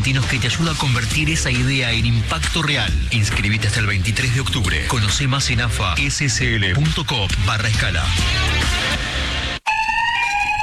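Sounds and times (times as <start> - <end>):
speech: 0.0 - 9.0
loud steady high-pitched electronic alarm tone: 9.6 - 10.6.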